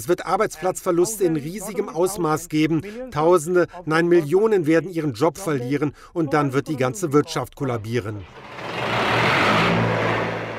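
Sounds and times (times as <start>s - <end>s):
speech: 0.0s - 8.5s
diesel generator running in a garment factory in Bangladesh: 8.2s - 10.5s.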